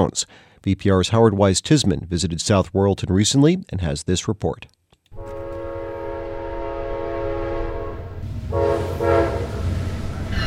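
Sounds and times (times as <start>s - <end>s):
speech: 0.0s - 4.8s
Amtrak passenger train horn blaring in South Royalton Vermont: 5.2s - 10.4s.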